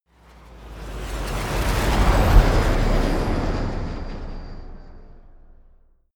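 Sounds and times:
flyby: 0.6 - 5.8.

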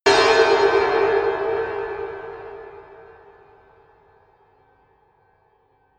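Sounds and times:
horror bell hits: 0.1 - 3.7.

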